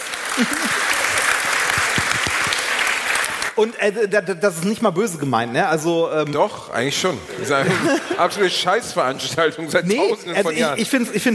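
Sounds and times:
applause from a small crowd: 0.0 - 3.6
laughter: 0.2 - 1.4, 7.2 - 8.9
speech: 0.4 - 0.9, 3.6 - 11.3.

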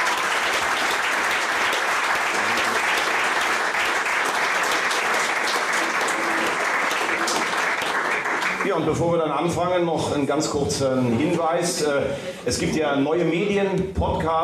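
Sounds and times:
crowd voices and cheers: 0.0 - 8.8
large audience applause: 0.0 - 8.9
speech: 8.8 - 14.4.

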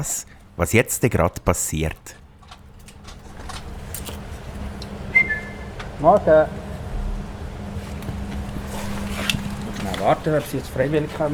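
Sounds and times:
speech: 0.0 - 2.2, 6.0 - 6.6, 10.0 - 11.3
steady low outdoor hum: 0.0 - 11.3
zookeeper whistling to call king penguins at a zoo on a February morning: 5.1 - 5.8.

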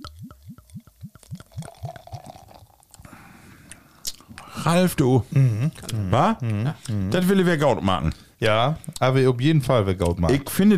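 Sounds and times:
bottom-fermented lager glugging from a bottle into a glass: 0.0 - 3.0
speech: 4.6 - 10.7.

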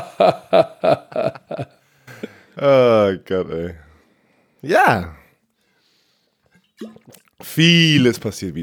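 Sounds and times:
speech: 0.2 - 1.3, 3.3 - 3.8, 4.6 - 5.2, 7.6 - 8.6
person swigging liquid from a cooling bottle: 6.5 - 7.5.

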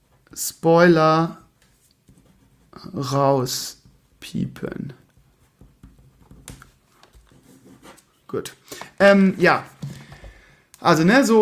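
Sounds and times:
speech: 0.4 - 1.4, 2.8 - 5.0, 8.3 - 9.8, 10.8 - 11.3
pen writing large letters on a paper note: 7.2 - 8.1.

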